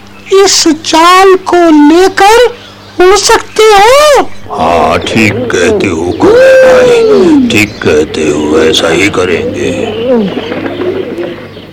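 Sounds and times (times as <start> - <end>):
speech: 0.3 - 10.7
pigeons cooing: 4.2 - 11.7.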